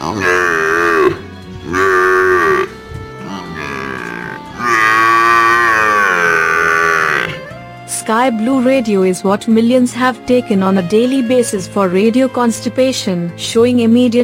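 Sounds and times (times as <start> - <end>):
water buffalo bellowing: 0.0 - 7.6
speech: 8.1 - 14.2.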